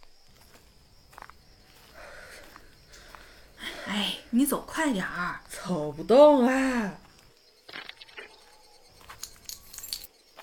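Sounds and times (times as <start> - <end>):
speech: 4.3 - 7.0
keys jangling: 9.1 - 10.1.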